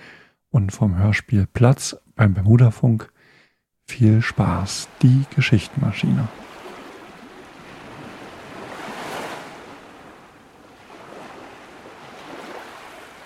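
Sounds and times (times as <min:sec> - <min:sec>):
speech: 0:00.5 - 0:03.1, 0:03.9 - 0:06.5
ocean waves at a fishing village: 0:04.0 - 0:13.2.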